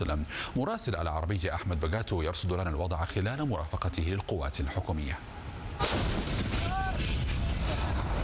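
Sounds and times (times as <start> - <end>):
speech: 0.0 - 6.1
artillery cannon fire at the Al-Barh front west of Taiz, Yemen: 5.8 - 8.2.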